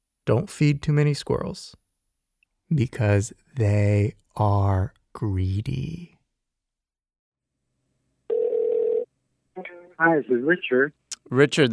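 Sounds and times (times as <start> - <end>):
speech: 0.3 - 1.8, 2.7 - 6.1, 9.6 - 11.7
telephone tone as a phone call is placed: 8.3 - 9.1.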